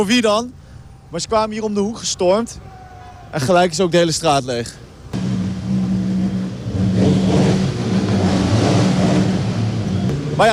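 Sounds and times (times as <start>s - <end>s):
speech: 0.0s - 5.2s
motorbike engines revving on a cleared street: 2.9s - 10.5s.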